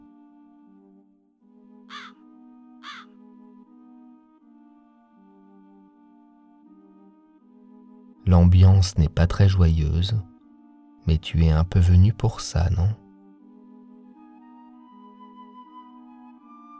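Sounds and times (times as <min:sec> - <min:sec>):
crows cawing: 0:01.9 - 0:03.2
speech: 0:08.2 - 0:10.3, 0:11.1 - 0:13.0.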